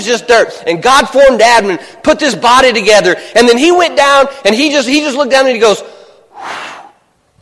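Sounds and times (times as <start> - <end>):
speech: 0.0 - 6.6
voice imitating breathing into nostrils: 5.9 - 7.1.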